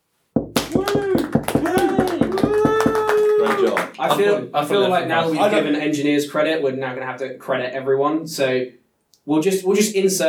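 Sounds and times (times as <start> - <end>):
people clapping: 0.4 - 4.4
voices whooping and cheering: 0.7 - 3.9
speech: 4.0 - 10.2.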